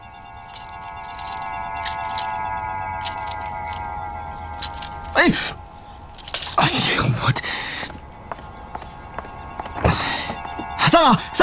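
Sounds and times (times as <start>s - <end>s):
car keys jangling: 0.0s - 6.8s
steady engine-like hum: 0.0s - 11.4s
speech: 5.2s - 5.6s, 6.6s - 7.4s.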